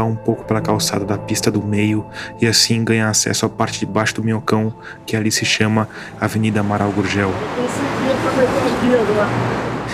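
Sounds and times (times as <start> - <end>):
speech: 0.0 - 9.9
dense city traffic rumbling on an urban roadway: 5.8 - 9.9.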